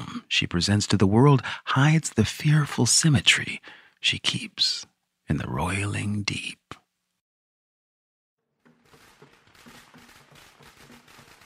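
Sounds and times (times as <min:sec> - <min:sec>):
speech: 0:00.4 - 0:06.6
long string of firecrackers popping: 0:08.6 - 0:11.4.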